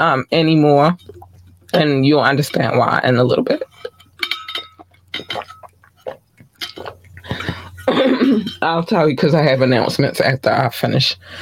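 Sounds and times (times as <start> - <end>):
speech: 0.0 - 3.9, 6.8 - 11.3
low hum: 0.0 - 11.3
water being poured: 0.8 - 7.9
glass clinking and ringing against something hard: 3.6 - 8.7.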